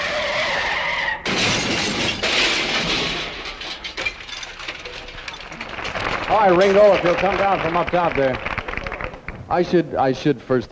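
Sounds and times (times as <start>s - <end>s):
tire skid squealing: 0.0s - 1.3s
Hudson car crash: 1.2s - 6.1s
car wreck shattering crunching debris: 1.3s - 6.4s
speech: 6.3s - 8.5s, 9.5s - 10.7s.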